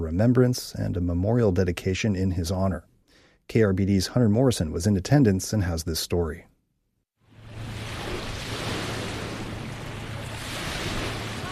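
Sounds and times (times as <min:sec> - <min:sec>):
speech: 0:00.0 - 0:02.9, 0:03.5 - 0:06.5
distant ocean waves crashing on shore: 0:07.3 - 0:11.5.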